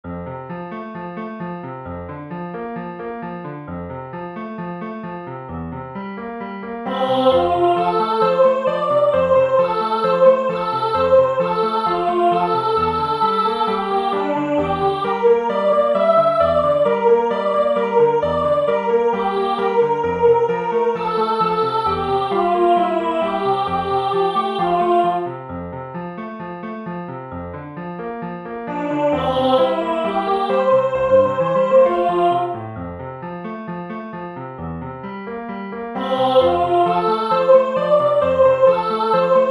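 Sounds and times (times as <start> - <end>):
piano: 0.0 - 39.5
person singing: 6.9 - 25.4, 28.7 - 32.6, 36.0 - 39.5.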